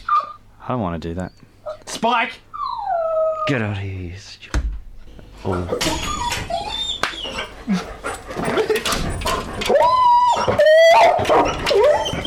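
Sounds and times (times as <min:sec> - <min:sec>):
dog yipping and barking: 0:00.0 - 0:00.4, 0:05.7 - 0:07.6, 0:09.6 - 0:12.2
speech: 0:00.7 - 0:02.5, 0:03.5 - 0:04.6, 0:05.4 - 0:06.3, 0:07.7 - 0:07.9, 0:10.9 - 0:12.2
dog whining and whimpering: 0:02.5 - 0:03.6, 0:05.5 - 0:12.2.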